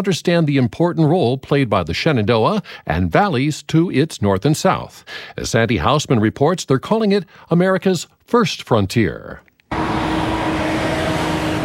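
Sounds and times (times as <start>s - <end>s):
speech: 0.0s - 10.0s
traffic roar of trucks, cars and buses on a major interstate highway: 9.7s - 11.6s.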